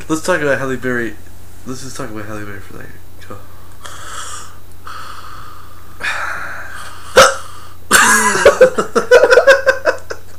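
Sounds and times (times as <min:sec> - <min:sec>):
speech: 0:00.1 - 0:04.0
person hiccuping: 0:07.1 - 0:08.3
laughter: 0:07.9 - 0:10.3.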